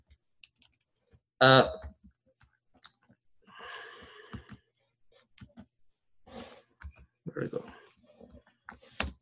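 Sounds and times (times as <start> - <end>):
computer keyboard typing: 0.0 - 1.2, 1.8 - 4.6, 5.3 - 5.7, 8.7 - 9.2
person talking: 7.2 - 7.9.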